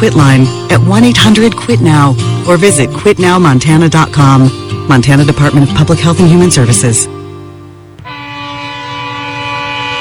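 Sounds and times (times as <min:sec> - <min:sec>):
speech: 0:00.0 - 0:07.2
train horn blaring: 0:08.0 - 0:09.9.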